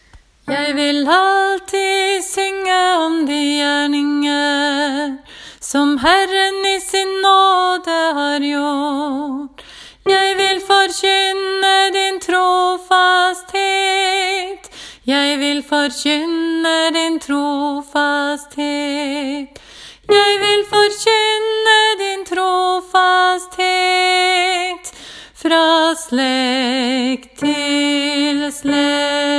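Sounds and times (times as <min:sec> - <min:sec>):
person singing: 0:00.4 - 0:29.3.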